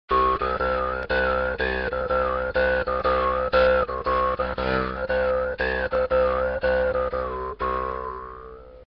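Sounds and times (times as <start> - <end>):
berimbau: 0.1 - 8.8.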